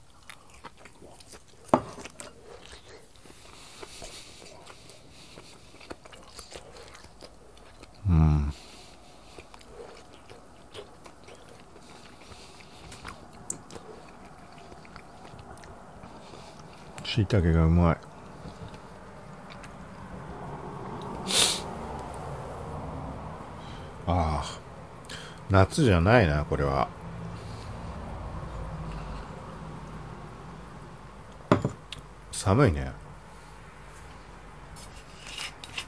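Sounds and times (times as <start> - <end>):
soft crunching and wet mouth sounds: 0.0 - 17.3, 18.0 - 20.2
chewing food: 0.0 - 21.2, 27.4 - 30.0
person murmuring: 8.0 - 8.6
speech: 17.2 - 18.1, 25.6 - 27.0, 32.4 - 33.0.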